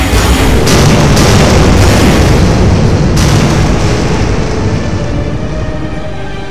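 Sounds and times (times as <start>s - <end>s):
giant robot firing booming blasts from its eyes: 0.0s - 6.2s
sharp explosive bursts: 0.0s - 6.2s
loud continuous low rumble: 0.0s - 6.5s.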